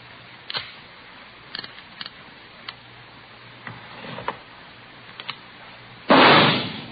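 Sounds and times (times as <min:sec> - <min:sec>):
.38 caliber revolver test-fired into a ballistics box: 0:06.1 - 0:06.8.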